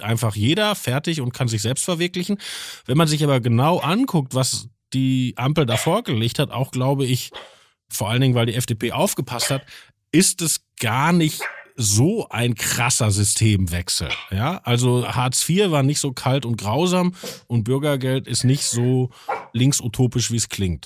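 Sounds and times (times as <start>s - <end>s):
speech: 0.0s - 20.8s
pug barking: 5.7s - 6.0s, 9.4s - 9.6s, 11.4s - 11.8s, 18.7s - 19.6s.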